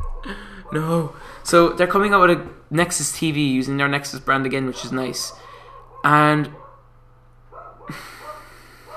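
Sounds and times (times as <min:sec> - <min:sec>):
dogs barking at home: 0:00.0 - 0:01.4, 0:04.6 - 0:08.9
steady low hum: 0:00.0 - 0:08.9
speech: 0:00.2 - 0:06.6, 0:07.9 - 0:08.2.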